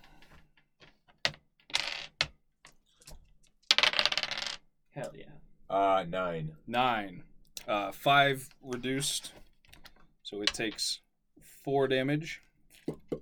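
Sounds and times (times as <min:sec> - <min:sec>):
two six-sided dice rolled during a tabletop game: 0:00.2 - 0:04.6, 0:08.7 - 0:10.9
speech: 0:05.0 - 0:09.4, 0:10.3 - 0:11.0, 0:11.6 - 0:12.4.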